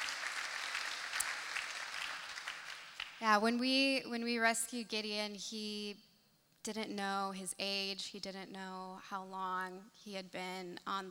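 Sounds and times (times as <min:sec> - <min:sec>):
audience applause: 0:00.0 - 0:03.2
speech: 0:03.2 - 0:11.0.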